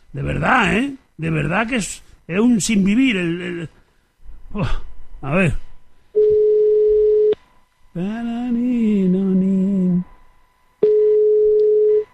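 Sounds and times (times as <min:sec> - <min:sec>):
speech: 0:00.1 - 0:03.8, 0:04.5 - 0:05.7, 0:08.0 - 0:10.1
steady single-pitched telephone line tone while redialing: 0:06.2 - 0:07.4, 0:10.8 - 0:12.1.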